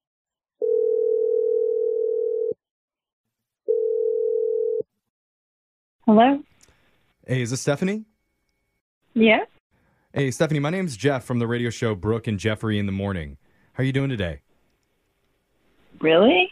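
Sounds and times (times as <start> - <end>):
long steady telephone ringing tones: 0.6 - 2.6, 3.7 - 4.9
speech: 6.1 - 6.5, 7.3 - 8.1, 9.1 - 9.5, 10.1 - 14.5, 16.0 - 16.5.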